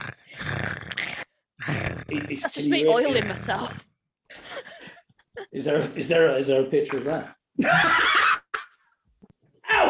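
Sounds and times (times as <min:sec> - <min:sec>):
dog growling snarl: 0:00.0 - 0:03.9
speech: 0:02.1 - 0:03.9, 0:05.5 - 0:08.1.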